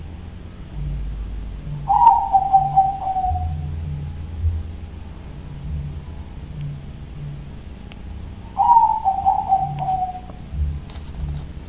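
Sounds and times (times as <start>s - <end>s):
steady low hum: 0.0s - 11.6s
dove call: 1.7s - 4.0s, 8.4s - 11.4s.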